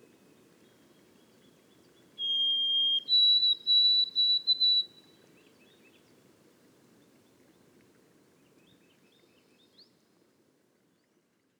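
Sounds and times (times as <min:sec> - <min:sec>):
white-throated sparrow whistled song in boreal forest of Haute-Côte-Nord: 0:02.2 - 0:05.0.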